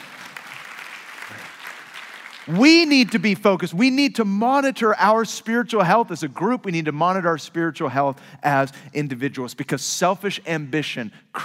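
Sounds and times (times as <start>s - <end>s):
church congregation clapping during a service: 0.0s - 3.5s
speech: 1.3s - 1.6s, 2.4s - 11.4s.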